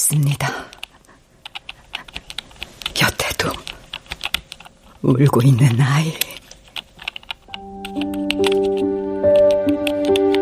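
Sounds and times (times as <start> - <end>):
speech: 0.1 - 0.6, 5.0 - 6.2
typing on a computer keyboard: 0.7 - 4.7, 6.1 - 10.3.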